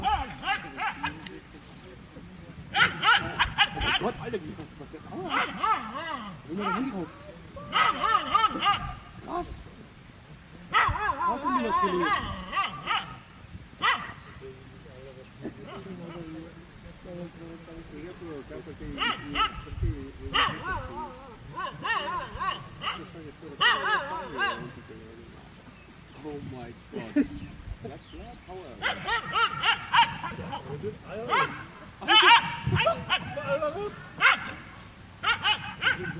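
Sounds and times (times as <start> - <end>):
dog barking and yipping in excited bursts: 0.0 - 1.2, 2.7 - 4.2, 5.2 - 7.1, 7.7 - 9.1, 10.7 - 14.2, 19.0 - 19.6, 20.3 - 24.7, 28.8 - 36.1
speech: 4.0 - 7.2.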